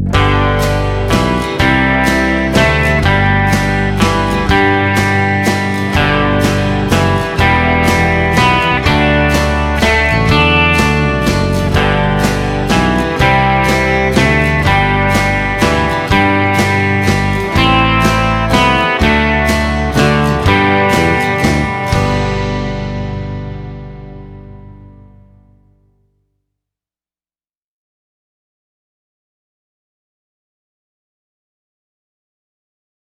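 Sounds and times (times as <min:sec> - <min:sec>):
waltz in G: 0:00.1 - 0:25.1.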